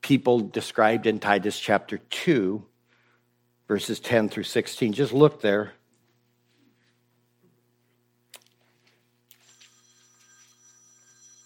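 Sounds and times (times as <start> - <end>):
constant low hum: 0.0 - 11.4
speech: 0.1 - 2.7, 3.7 - 5.8
telephone ringing with high electronic trill: 9.3 - 11.4.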